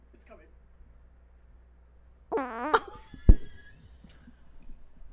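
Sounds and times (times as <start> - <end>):
fart blown into a microphone: 2.3 - 3.6.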